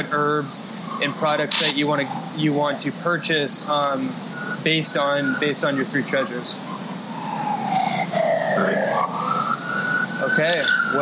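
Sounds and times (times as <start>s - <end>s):
speech: 0.0s - 6.8s, 10.4s - 11.0s
constant traffic rumble: 0.0s - 11.0s
emergency vehicle sirens wailing through downtown Los Angeles: 0.0s - 11.0s.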